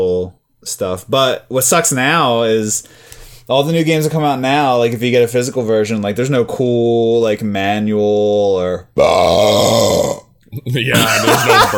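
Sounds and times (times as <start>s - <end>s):
speech: 0.0s - 11.7s
person imitating a burp as air escaping from a newly opened sealed game case: 9.0s - 11.0s
laughter: 10.9s - 11.7s.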